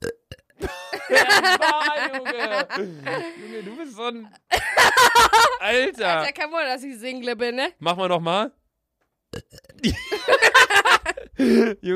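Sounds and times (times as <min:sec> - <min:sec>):
long loud croaky burp: 0:00.0 - 0:00.7, 0:09.3 - 0:09.9
laughter: 0:00.6 - 0:03.8, 0:04.5 - 0:05.9, 0:09.9 - 0:11.3
speech: 0:01.1 - 0:08.6, 0:09.3 - 0:11.9.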